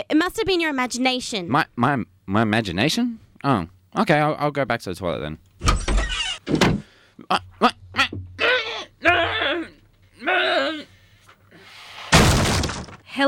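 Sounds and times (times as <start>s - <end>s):
speech: 0.0s - 5.5s, 7.3s - 7.8s
wooden door being kicked in: 5.6s - 6.9s, 12.1s - 13.0s
strained wavering vocal cries: 7.6s - 11.0s
crash: 12.1s - 13.0s.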